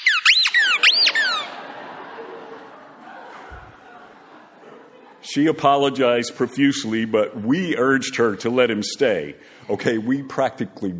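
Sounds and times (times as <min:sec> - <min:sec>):
schnauzer squeezing a squeaky toy in its jaws: 0:00.0 - 0:01.6
laughter: 0:00.6 - 0:06.5
speech: 0:05.3 - 0:10.9.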